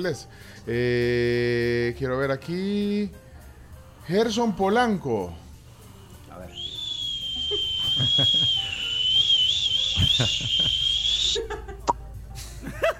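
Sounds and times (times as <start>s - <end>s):
speech: 0.0s - 3.2s, 4.1s - 5.4s, 8.0s - 8.6s, 10.1s - 11.6s
person whistling a long high wavering note: 6.5s - 11.5s
people talking and laughing: 7.0s - 9.1s, 9.8s - 12.9s.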